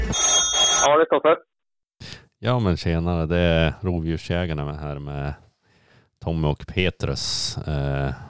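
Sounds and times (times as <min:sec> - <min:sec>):
outgoing phone call ringing tone: 0:00.1 - 0:00.9
speech: 0:02.5 - 0:05.4, 0:06.2 - 0:08.2.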